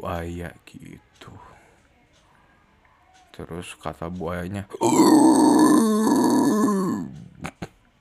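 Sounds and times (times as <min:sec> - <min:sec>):
speech: 0:00.0 - 0:01.5, 0:03.4 - 0:06.2
person imitating pig grunts: 0:04.8 - 0:07.2.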